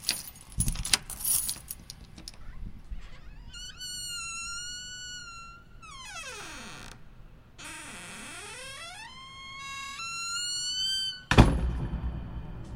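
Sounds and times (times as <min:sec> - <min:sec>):
keys jangling and rattling in a lock: 0:00.0 - 0:02.5
door creaking as it swings open: 0:02.1 - 0:12.0
solid thump: 0:11.3 - 0:12.7.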